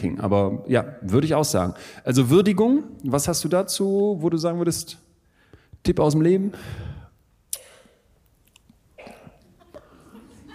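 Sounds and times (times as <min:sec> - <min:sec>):
speech: 0:00.0 - 0:05.1, 0:05.8 - 0:07.0
person coughing: 0:09.0 - 0:10.0
laughter: 0:09.6 - 0:10.5.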